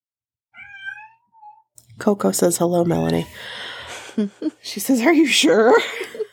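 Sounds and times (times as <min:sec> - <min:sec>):
cat meowing: 0:00.6 - 0:01.7
speech: 0:02.0 - 0:03.6, 0:04.2 - 0:06.2.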